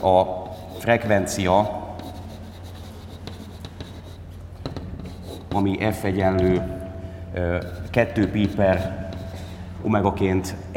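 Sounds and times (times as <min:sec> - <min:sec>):
speech: 0:00.0 - 0:01.8, 0:05.5 - 0:09.0, 0:09.8 - 0:10.7
writing on a board during a physics lecture: 0:00.0 - 0:05.8, 0:07.6 - 0:09.7
steady low hum: 0:00.0 - 0:10.7.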